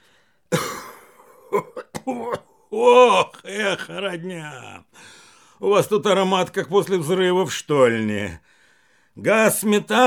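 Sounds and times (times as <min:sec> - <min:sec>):
miner clearing throat: 0:00.5 - 0:02.6
miner coughing: 0:00.5 - 0:04.0
speech: 0:01.5 - 0:08.5, 0:09.2 - 0:10.0.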